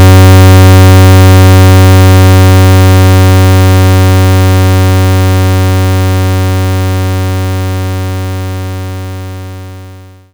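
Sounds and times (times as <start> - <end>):
75 Hz pulse tone: 0.0 - 7.8.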